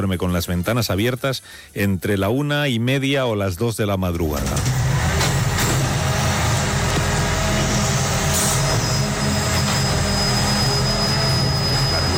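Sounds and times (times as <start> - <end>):
speech: 0.0 - 4.8
old garbage truck engine roar in a city street at night: 4.4 - 12.1
thin steady whine: 4.9 - 12.1.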